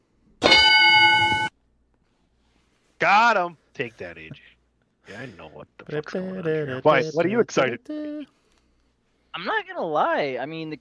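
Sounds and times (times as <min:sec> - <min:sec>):
bright bell tone with metallic overtones: 0:00.4 - 0:01.5
speech: 0:03.0 - 0:04.5, 0:05.1 - 0:08.4, 0:09.3 - 0:10.8.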